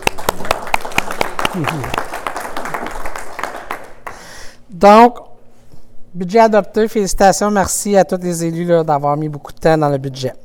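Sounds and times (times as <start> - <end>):
council members clapping: 0.0 - 4.4
speech: 1.6 - 2.0, 4.8 - 5.2, 6.2 - 10.4.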